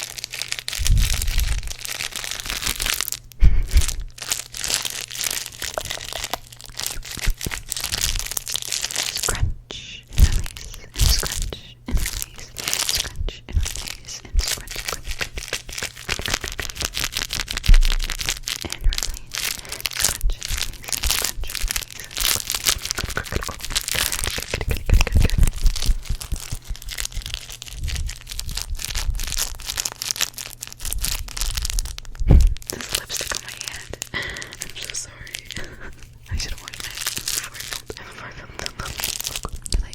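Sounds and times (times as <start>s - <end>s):
dense crinkly rustles: 0.0s - 9.5s, 10.1s - 39.9s
sharp tearing bursts: 0.0s - 9.5s, 10.1s - 37.9s
low steady hum: 0.0s - 39.9s
fast ASMR mouth sounds: 6.7s - 8.3s, 9.0s - 17.1s, 18.6s - 28.1s, 32.1s - 39.9s.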